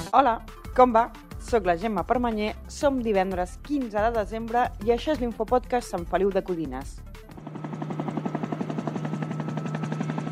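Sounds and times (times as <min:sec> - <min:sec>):
speech: 0:00.1 - 0:08.0
emergency medical services helicopter flying over a four-vehicle accident: 0:06.4 - 0:10.3.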